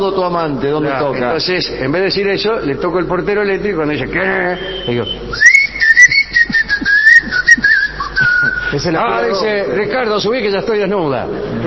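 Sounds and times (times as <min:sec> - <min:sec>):
speech: 0:00.0 - 0:05.5, 0:08.7 - 0:11.6
faint noise: 0:00.0 - 0:11.6
person whistling a wavering tune to call someone: 0:04.6 - 0:08.8.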